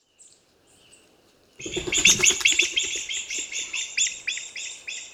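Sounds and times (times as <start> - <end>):
Himalayan monal calling: 1.6 - 5.0.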